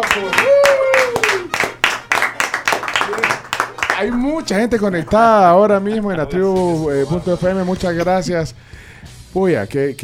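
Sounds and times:
small group clapping: 0.0s - 5.6s
short rising whoop or whistle: 0.3s - 1.5s
speech: 4.0s - 10.0s.

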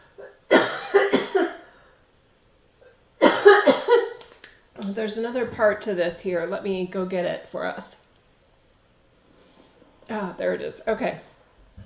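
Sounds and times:
person coughing: 0.2s - 1.6s, 3.2s - 4.2s
speech: 5.0s - 8.0s, 10.1s - 11.3s.

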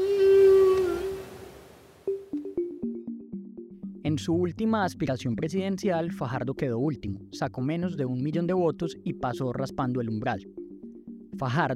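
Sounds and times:
whale song long moaning tonal call: 0.0s - 1.6s
speech: 4.1s - 10.6s, 11.4s - 11.7s.

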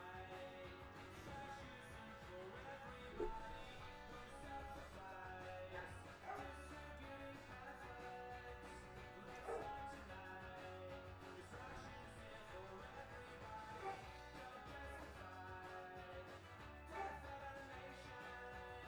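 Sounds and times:
music playing: 0.0s - 18.8s
dog barking: 3.0s - 4.3s, 5.8s - 6.6s, 9.2s - 9.9s, 13.7s - 14.0s, 16.9s - 17.2s.

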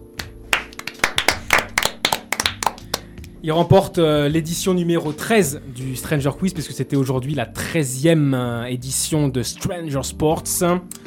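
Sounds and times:
small group of people clapping in applause: 0.1s - 3.3s
speech: 3.4s - 11.0s.

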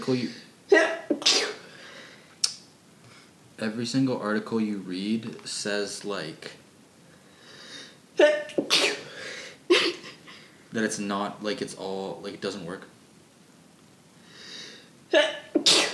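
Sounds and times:
speech: 0.0s - 0.9s, 3.6s - 6.6s, 10.7s - 13.0s
person sneezing: 0.7s - 1.7s, 8.2s - 10.0s, 15.1s - 15.9s
breath intake: 1.1s - 2.4s, 7.1s - 8.0s, 8.6s - 10.7s, 14.2s - 14.9s.

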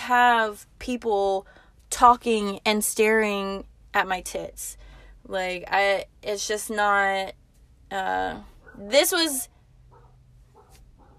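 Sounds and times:
speech: 0.1s - 9.6s
dog barking faint and muffled from another room: 9.9s - 11.1s.

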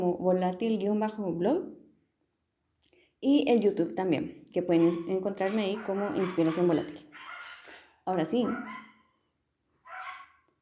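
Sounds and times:
speech: 0.0s - 1.8s, 2.8s - 7.0s, 8.0s - 8.8s
dog barking: 4.8s - 7.8s, 8.4s - 9.1s, 9.8s - 10.5s.

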